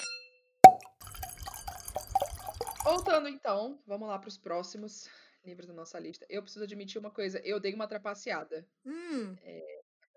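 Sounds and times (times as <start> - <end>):
single sharp plop of liquid: 0.6 - 3.1
soft irregular wet gulps and trickles: 0.6 - 3.1
speech: 2.8 - 9.8.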